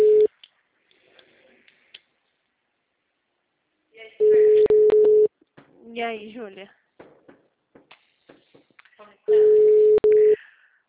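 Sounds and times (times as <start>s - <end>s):
telephone line tone while placing a call: 0.0s - 0.3s, 4.2s - 5.3s, 9.3s - 10.4s
speech: 6.0s - 6.8s.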